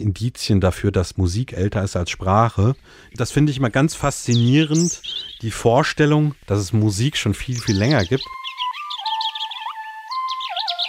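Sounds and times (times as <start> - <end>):
speech: 0.0 - 8.4
European robin singing: 2.3 - 10.8.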